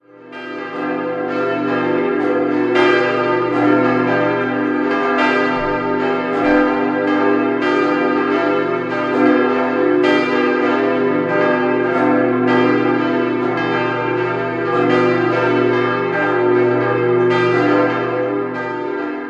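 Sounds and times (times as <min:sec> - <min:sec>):
bells ringing in Mamming: 0:00.2 - 0:19.2.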